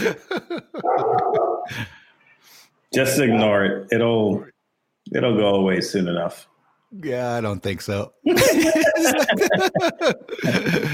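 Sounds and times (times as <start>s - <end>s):
speech: 0.0s - 0.4s, 2.9s - 4.5s, 5.1s - 10.9s
laughter: 0.0s - 1.9s, 8.3s - 10.9s
dog barking: 0.8s - 1.7s.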